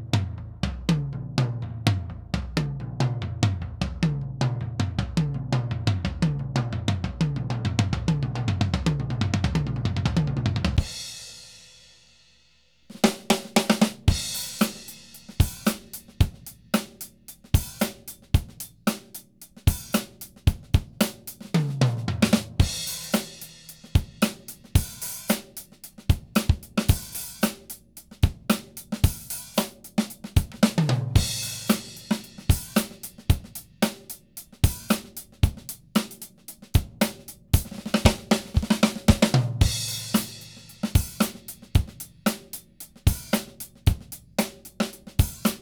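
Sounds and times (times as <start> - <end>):
whole drum kit playing instrumental: 0.3 - 12.3, 12.8 - 45.5.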